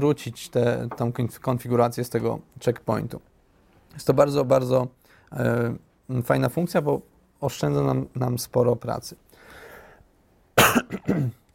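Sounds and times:
speech: 0.0 - 3.3, 4.0 - 9.2, 10.8 - 11.4
man with a slight cold coughing: 10.6 - 11.4.

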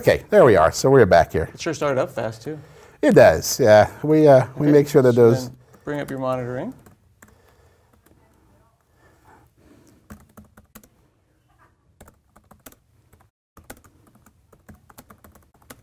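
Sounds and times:
speech: 0.0 - 6.8
typing on a small computer keyboard: 5.7 - 8.2, 10.0 - 10.9, 12.0 - 15.8.

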